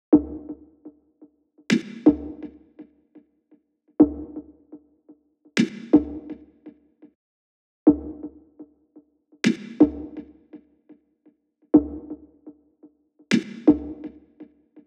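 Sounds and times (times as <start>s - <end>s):
percussion loop: 0.1s - 1.0s, 1.7s - 2.9s, 4.0s - 4.8s, 5.6s - 6.8s, 7.9s - 8.7s, 9.4s - 10.6s, 11.8s - 12.6s, 13.3s - 14.8s.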